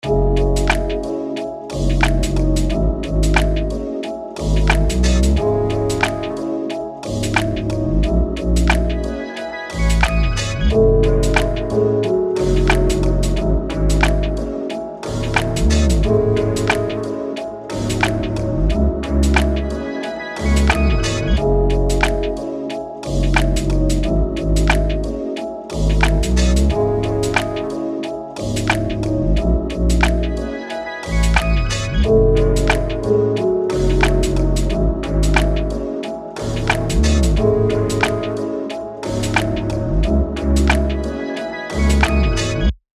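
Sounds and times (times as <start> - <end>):
lofi melody loop in C minor: 0.0 - 42.7.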